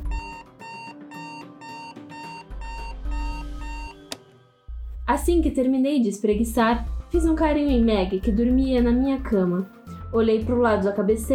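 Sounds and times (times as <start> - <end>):
alarm clock ringing with an electronic melody: 0.0 - 4.1
speech: 5.1 - 11.3.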